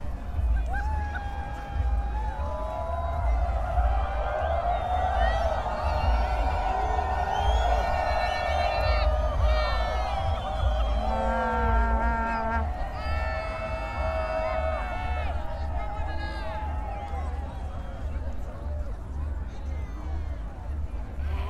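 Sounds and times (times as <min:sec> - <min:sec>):
cheering: 0:00.0 - 0:21.4.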